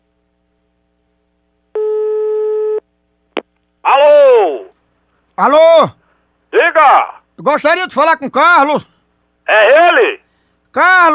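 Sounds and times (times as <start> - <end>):
telephone ringing tone while placing a call: 1.8 - 2.8
speech: 5.4 - 8.9, 9.5 - 10.2, 10.8 - 11.1.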